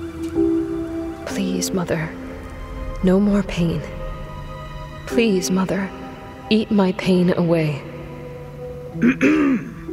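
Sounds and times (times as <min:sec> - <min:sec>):
speech: 0:01.4 - 0:02.2, 0:03.0 - 0:04.0, 0:05.1 - 0:07.9, 0:09.0 - 0:09.7
throat clearing: 0:09.0 - 0:09.8.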